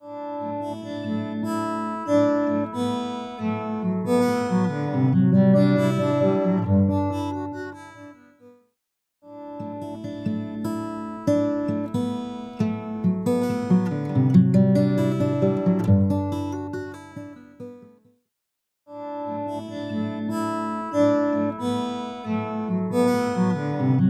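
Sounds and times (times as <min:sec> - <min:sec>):
bowed guitar: 0:00.4 - 0:08.2, 0:09.6 - 0:17.8, 0:19.4 - 0:24.0.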